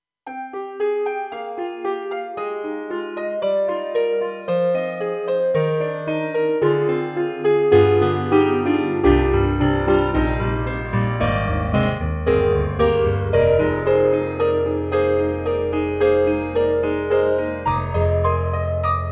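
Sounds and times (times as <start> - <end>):
piano from Korg EXB-PCM08 on a TRITON-Rack: 0.3 - 19.1.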